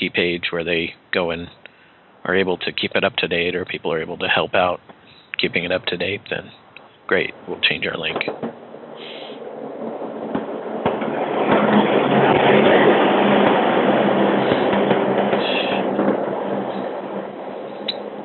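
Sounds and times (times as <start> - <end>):
speech: 0.1 - 8.6
bus rumbling past: 8.6 - 18.2.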